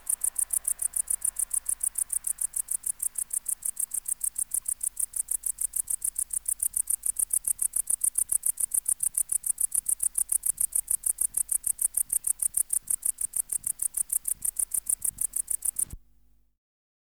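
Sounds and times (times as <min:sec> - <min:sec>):
Tettigonia hispanica bush-cricket song of high dry pulses: 0:00.0 - 0:16.0.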